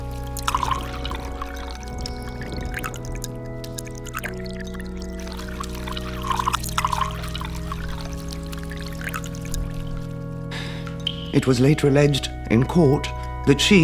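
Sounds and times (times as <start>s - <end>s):
coffee poured over open-toed sandals: 0.0s - 10.2s
low sustained tonal hum: 0.0s - 13.5s
speech: 11.4s - 13.8s.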